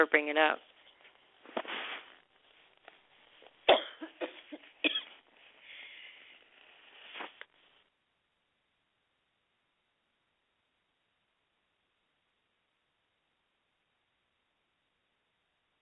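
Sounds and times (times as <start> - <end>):
speech: 0.0 - 0.7
person coughing: 3.7 - 5.2.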